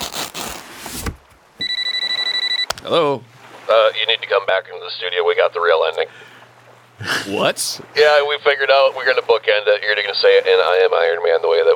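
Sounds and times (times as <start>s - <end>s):
broadband rustling noise: 0.0s - 1.5s
cell phone ringing: 1.6s - 2.8s
speech: 2.9s - 6.3s, 7.0s - 11.7s.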